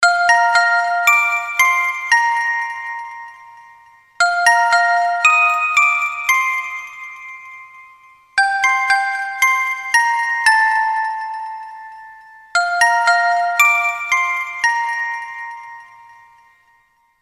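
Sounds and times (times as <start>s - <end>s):
christmas alarm ringtone: 0.0s - 17.2s.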